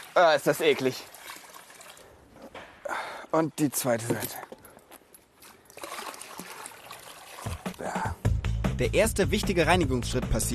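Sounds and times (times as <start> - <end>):
liquid pouring into a basin: 0.0 - 2.2, 5.4 - 7.9
speech: 0.2 - 1.2, 3.3 - 4.6, 8.8 - 10.5.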